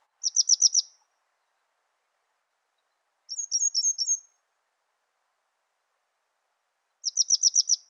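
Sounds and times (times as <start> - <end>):
birds: 0.0 - 4.4, 6.9 - 7.8.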